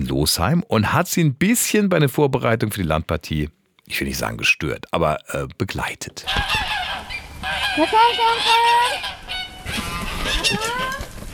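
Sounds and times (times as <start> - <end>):
speech: 0.1 - 6.7, 7.8 - 9.8, 10.4 - 11.0
flock of geese honking on a farm: 6.2 - 11.3.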